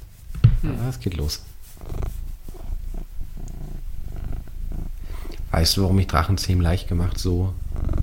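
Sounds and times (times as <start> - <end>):
male cat purring while sitting: 0.2 - 8.0
speech: 0.6 - 2.0, 5.5 - 7.6.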